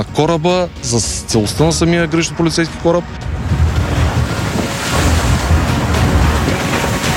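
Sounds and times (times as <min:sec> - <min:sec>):
speech: 0:00.0 - 0:03.6
strong wind roaring: 0:01.6 - 0:07.1
rough sea waves of force 4 crashing: 0:02.8 - 0:07.1.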